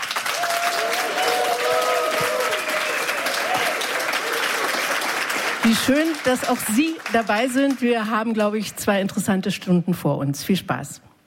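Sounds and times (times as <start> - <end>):
large live audience applauding: 0.0 - 9.0
faint cheering: 0.2 - 5.0
speech: 5.7 - 11.1.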